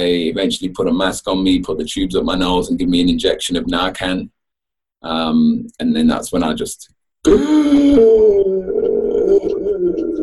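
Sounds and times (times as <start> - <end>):
speech: 0.0 - 4.4, 5.0 - 8.8
person imitating a long gasp for air: 7.3 - 10.2.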